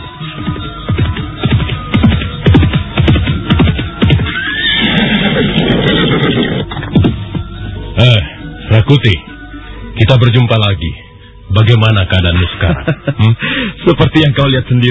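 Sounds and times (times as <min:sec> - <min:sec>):
horse galloping on the main road to Pajarakan village by a forest: 0:01.4 - 0:07.2
horse neighing long and shrill: 0:04.1 - 0:07.0
speech: 0:08.9 - 0:09.3, 0:10.0 - 0:14.8
laughter: 0:12.4 - 0:13.4.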